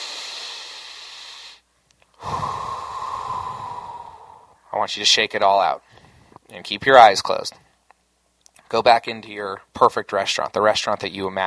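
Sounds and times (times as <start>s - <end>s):
deep breath during a guided relaxation exercise: 0.0s - 4.7s, 5.8s - 6.4s
speech: 4.8s - 7.6s, 8.7s - 11.4s.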